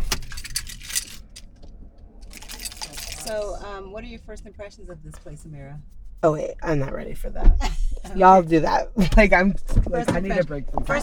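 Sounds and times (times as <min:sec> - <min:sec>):
car keys jangling: 0:00.0 - 0:03.6
car engine rumble as a car is turned off: 0:00.0 - 0:11.0
speech: 0:03.3 - 0:11.0.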